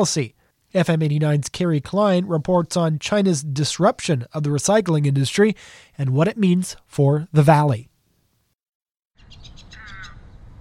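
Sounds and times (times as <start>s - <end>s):
speech: 0.0s - 7.9s
egrets, herons and great horned owls calling at a waste transfer station: 9.2s - 10.5s.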